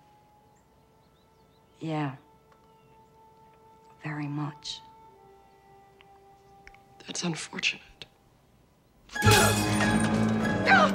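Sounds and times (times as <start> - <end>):
speech: 1.8 - 2.2, 4.0 - 4.9, 7.1 - 7.9
picture frame glass smashing: 9.2 - 10.7.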